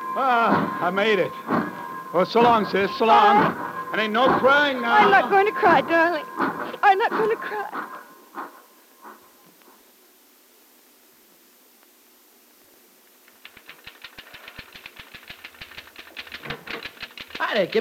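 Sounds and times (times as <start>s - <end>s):
faint tones: 0.0s - 10.3s
speech: 0.2s - 7.9s, 17.6s - 17.7s
rapid typing on a typewriter: 13.4s - 17.7s.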